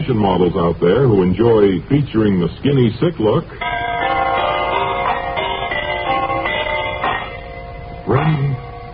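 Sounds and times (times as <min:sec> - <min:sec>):
speech: 0:00.0 - 0:03.8, 0:08.1 - 0:08.6
brass door chimes ringing: 0:03.6 - 0:08.9.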